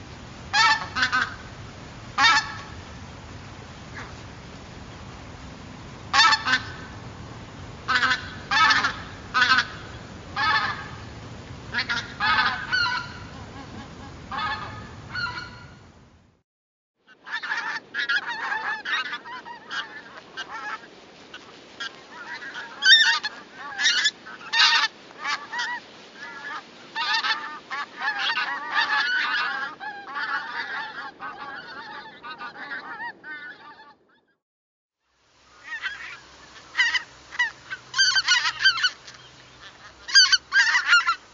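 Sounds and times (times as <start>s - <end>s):
flock of greater white-fronted geese giving chattering calls: 0.0s - 15.9s, 17.2s - 34.0s, 35.5s - 41.3s
low rumbling background: 0.0s - 16.4s.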